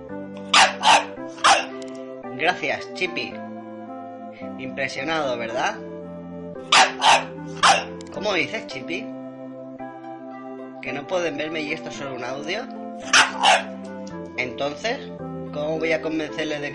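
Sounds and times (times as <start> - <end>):
dog barking: 0.4 - 1.7, 6.7 - 8.0, 13.0 - 13.8
speech: 2.4 - 3.5, 4.5 - 5.9, 6.7 - 9.2, 10.8 - 13.8, 14.4 - 16.7.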